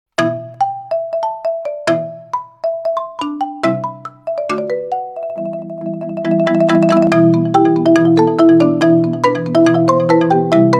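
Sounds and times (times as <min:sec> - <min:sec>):
xylophone instrumental ringtone: 0:00.2 - 0:10.7.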